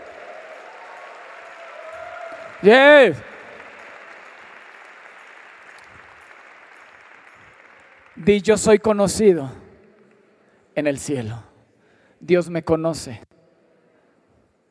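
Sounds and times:
congregation applauding: 0:00.0 - 0:10.2
speech: 0:02.6 - 0:03.3, 0:08.2 - 0:09.6, 0:10.8 - 0:11.5, 0:12.2 - 0:13.3.

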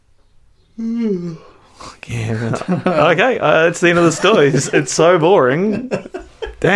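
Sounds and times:
speech: 0:00.8 - 0:01.5, 0:02.1 - 0:06.7
person yawning: 0:00.8 - 0:02.0
laughter: 0:02.1 - 0:06.7.

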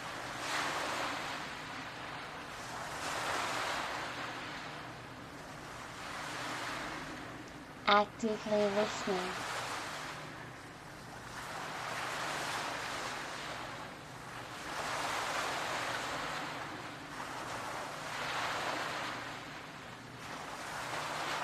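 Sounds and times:
ocean waves surging and receding: 0:00.0 - 0:21.4
speech: 0:07.9 - 0:09.5.

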